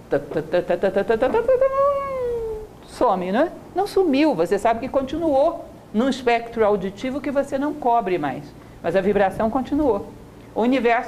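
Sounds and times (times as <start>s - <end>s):
speech: 0.1s - 2.1s, 2.9s - 11.0s
voice imitating a motorcycle engine starting and revving: 1.0s - 2.8s.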